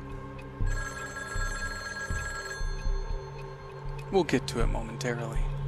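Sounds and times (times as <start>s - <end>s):
telephone ringing with buzzing electronic tone: 0.7s - 3.1s
speech: 4.1s - 5.5s.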